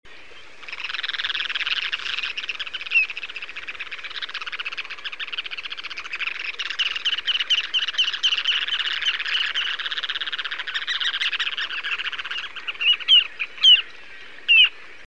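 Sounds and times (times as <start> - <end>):
ruddy turnstone calling: 0.6 - 14.8.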